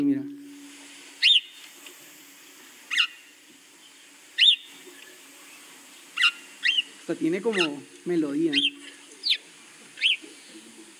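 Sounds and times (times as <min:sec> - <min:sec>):
faint steady hiss: 0:00.0 - 0:10.9
recording of sparrows chirping played back: 0:01.2 - 0:01.8, 0:02.8 - 0:10.9
speech: 0:07.1 - 0:09.0.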